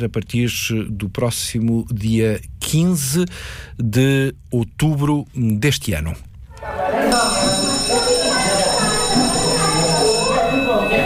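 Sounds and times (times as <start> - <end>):
speech: 0.0 - 7.6
busy chatter of many voices: 6.6 - 11.0
school bell ringing: 7.1 - 11.0.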